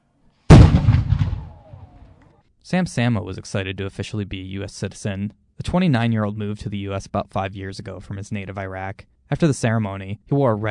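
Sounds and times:
cannon shot fired at a U.S. naturalization ceremony: 0.5 - 2.3
speech: 2.6 - 10.6.

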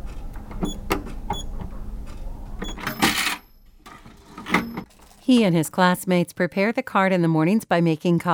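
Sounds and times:
cash register key presses on a school coffee and snack cart: 0.3 - 1.7, 2.6 - 6.0
cash register drawer sliding open: 2.6 - 6.0
speech: 5.3 - 8.3.

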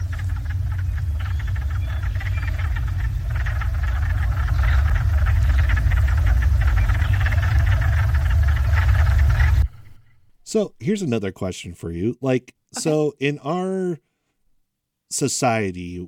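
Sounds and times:
dense chorus of wood frogs croaking: 0.0 - 10.4
speech: 10.5 - 14.1, 15.1 - 16.0.

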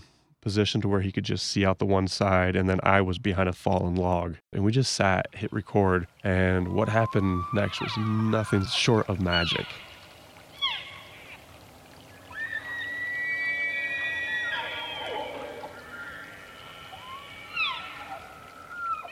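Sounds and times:
speech: 0.4 - 9.9
elk bugling in the darkness: 5.7 - 19.1.

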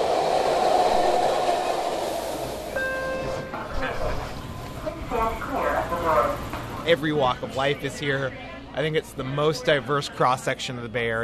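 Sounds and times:
high-pitched whine: 0.0 - 6.1
BART commuter train rumbling and rattling in the Bay Area: 0.0 - 6.8
indistinct voices of passengers murmuring: 2.5 - 11.2
speech: 6.9 - 11.2.

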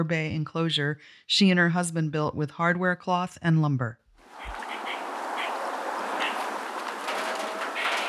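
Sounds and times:
speech: 0.0 - 4.0
steady outdoor hiss: 4.2 - 8.0
wild squirrel chirping an alarm call: 4.3 - 6.6.

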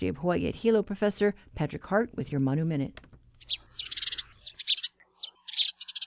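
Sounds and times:
speech: 0.0 - 3.6
house sparrow chirping: 3.4 - 6.0.

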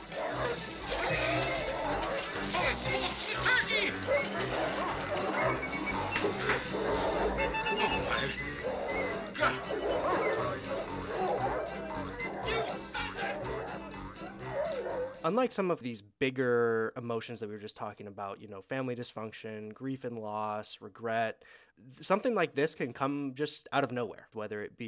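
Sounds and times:
several dogs barking and yapping excitedly while eating Christmas dinner: 0.0 - 15.3
people's voices: 0.1 - 13.9
speech: 15.3 - 24.8.

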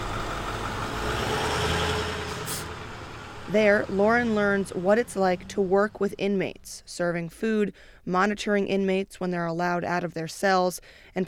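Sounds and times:
bus diesel engine idling: 0.0 - 6.2
short burst of hiss: 2.3 - 2.7
speech: 3.5 - 11.2.

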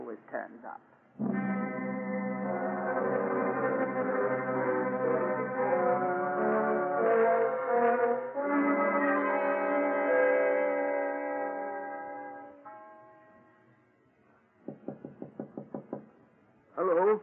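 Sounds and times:
speech: 0.3 - 0.9
musical chord: 1.2 - 13.6
firm knocks on a door: 14.6 - 16.2.

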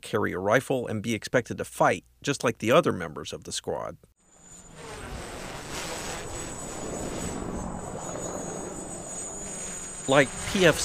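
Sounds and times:
speech: 0.1 - 4.1, 10.1 - 10.8
small quadcopter drone motor whine: 4.2 - 10.8
quadcopter drone rotor noise: 4.3 - 10.8
gusting wind: 4.4 - 10.8.

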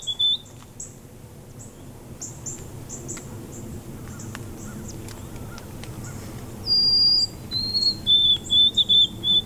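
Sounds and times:
white-throated sparrow whistling song: 0.0 - 0.6, 6.6 - 9.4.

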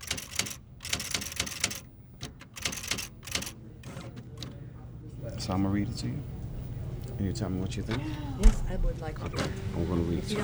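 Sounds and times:
poet typing a poem on a typewriter at a library: 0.0 - 4.6
speech: 5.5 - 6.4, 7.2 - 10.4.

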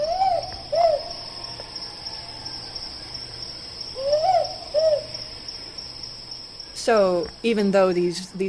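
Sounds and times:
Mindanao or Camiguin hawk owl hooting: 0.0 - 2.3, 3.9 - 5.2
steady high-pitched insect drone: 0.0 - 8.4
speech: 6.8 - 8.4.

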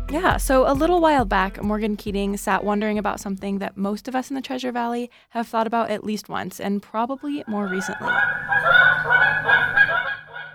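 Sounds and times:
speech: 0.1 - 10.0
geese honking: 7.5 - 10.5.

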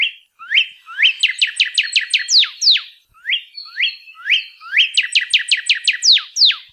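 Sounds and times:
Northern cardinal song with upslurred and downslurred whistles: 0.0 - 6.7.

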